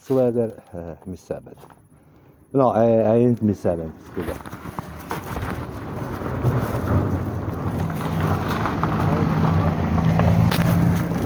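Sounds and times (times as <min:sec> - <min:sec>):
speech: 0:00.1 - 0:01.8, 0:02.5 - 0:04.7
car passing by: 0:05.5 - 0:11.2.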